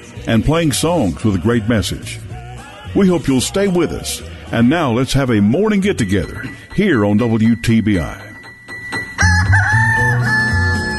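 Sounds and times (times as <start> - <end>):
speech: 0.2 - 2.3, 2.9 - 8.2
rooster from a hen house crowing: 9.2 - 10.9.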